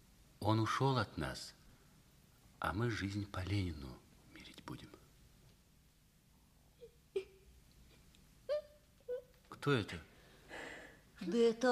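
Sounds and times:
speech: 0.4s - 1.6s, 2.6s - 4.0s, 4.7s - 5.0s, 9.6s - 10.1s, 11.2s - 11.6s
girl whimpering and sobbing: 6.8s - 7.5s, 8.5s - 9.4s.

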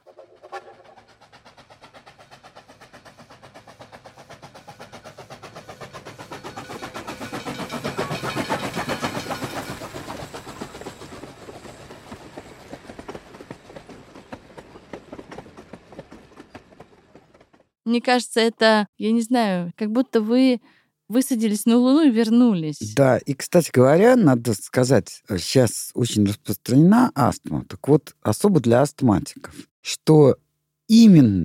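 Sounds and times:
approaching train wheels clattering on rails: 0.1s - 17.8s
speech: 17.9s - 31.4s.

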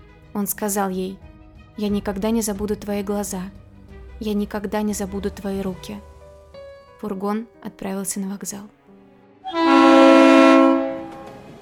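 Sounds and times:
speech: 0.4s - 3.6s, 4.2s - 6.1s, 7.0s - 8.8s
freight train horn blast: 9.4s - 11.5s.

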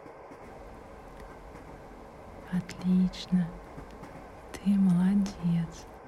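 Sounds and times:
train car rolling along tracks heard from inside: 0.2s - 6.0s
speech: 2.5s - 3.6s, 4.6s - 5.9s.

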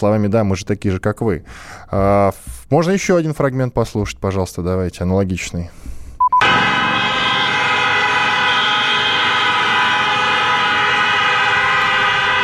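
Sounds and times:
speech: 0.0s - 6.0s
sirens blaring across the city of Minsk: 6.4s - 12.4s.

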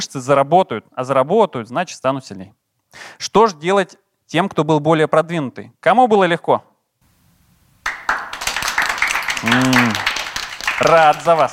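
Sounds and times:
speech: 0.0s - 6.7s, 10.8s - 11.5s
audience applause: 7.8s - 11.5s
person exclaiming: 9.4s - 10.0s.

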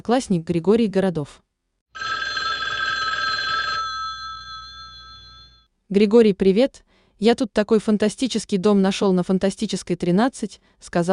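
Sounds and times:
speech: 0.0s - 1.4s, 5.9s - 11.1s
telephone bell ringing in a long jangle: 2.0s - 5.7s.

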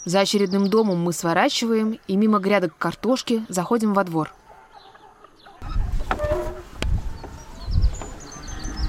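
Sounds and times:
speech: 0.0s - 4.4s
faint high birdsong: 0.0s - 8.8s
chickens clucking outdoors walking along a road: 2.2s - 8.8s.

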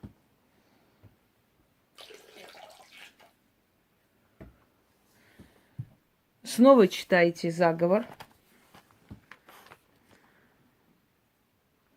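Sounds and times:
wine poured into a basin of water with sea salt: 2.0s - 3.4s
speech: 6.6s - 8.2s.

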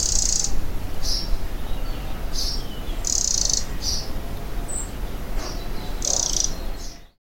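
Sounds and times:
wren alarm call with soft dry crackling rattles: 0.0s - 7.2s.

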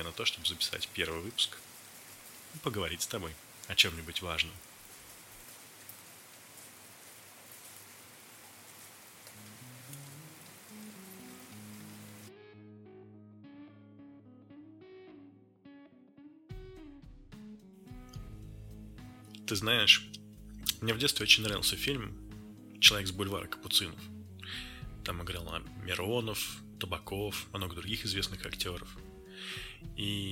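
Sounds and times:
speech: 0.0s - 1.7s, 2.5s - 4.7s, 19.5s - 20.2s, 20.8s - 22.2s, 22.8s - 30.2s
dense rain outside a window in Saint Petersburg in midsummer: 0.0s - 12.3s, 22.8s - 26.6s, 28.2s - 30.2s
gentle tonal music intro: 9.3s - 16.4s, 17.3s - 30.2s.

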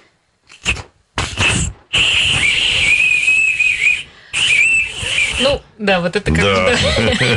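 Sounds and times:
Russian clay whistle being blown: 0.5s - 5.6s
speech: 5.8s - 7.3s
laughter: 6.5s - 7.3s.

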